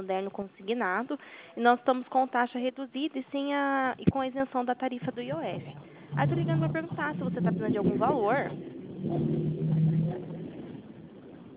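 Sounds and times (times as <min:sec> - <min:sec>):
speech: 0:00.0 - 0:09.8
low rumble of car traffic heard from inside a moving vehicle: 0:04.9 - 0:11.5
faint engine hum of a moving vehicle: 0:05.0 - 0:11.5.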